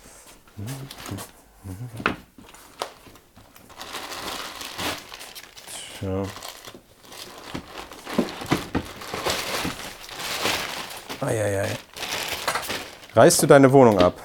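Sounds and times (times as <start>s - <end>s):
speech: 0.6s - 2.3s, 6.0s - 6.5s, 11.2s - 11.9s, 13.2s - 14.2s
paper crinkling and crumpling while stuffed into a drawer: 2.5s - 13.7s.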